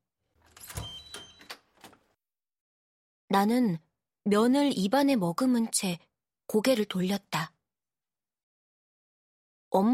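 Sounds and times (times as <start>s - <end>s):
door being pulled open: 0.4s - 2.2s
digital door lock whirring and clicking open: 0.5s - 2.0s
speech: 3.3s - 7.5s, 9.7s - 9.9s.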